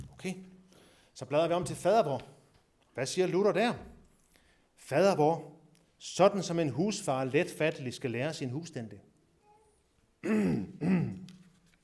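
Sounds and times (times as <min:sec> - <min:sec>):
speech: 0:00.2 - 0:00.5, 0:01.2 - 0:02.4, 0:03.0 - 0:03.9, 0:04.8 - 0:09.1, 0:10.2 - 0:11.3
person clearing throat: 0:10.2 - 0:11.3.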